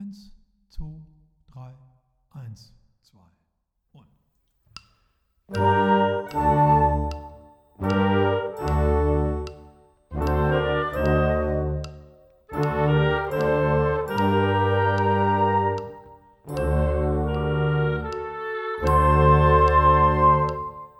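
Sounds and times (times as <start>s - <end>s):
classical music: 5.5s - 20.9s
click track: 5.5s - 20.9s.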